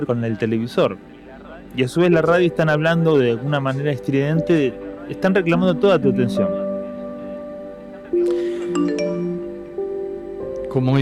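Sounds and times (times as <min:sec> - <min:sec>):
speech: 0:00.0 - 0:01.1, 0:01.7 - 0:06.6, 0:10.8 - 0:10.9
mobile phone ringtone with electronic melody: 0:08.4 - 0:09.7.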